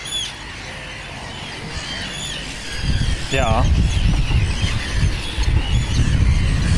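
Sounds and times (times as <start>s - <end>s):
Arctic terns screeching while circling over a coastal dike: 0.0s - 6.7s
wind noise: 0.0s - 6.7s
speech: 3.3s - 4.4s.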